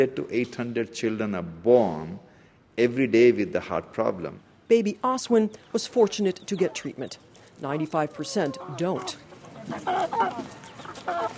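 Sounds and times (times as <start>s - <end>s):
speech: 0.0s - 11.3s
chickens clucking at a family house: 5.0s - 11.3s.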